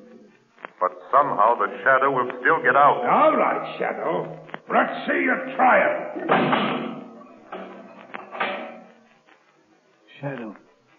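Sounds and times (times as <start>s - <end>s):
speech: 0.8s - 6.9s, 10.2s - 10.6s
heavy steel door slamming shut: 6.2s - 7.7s.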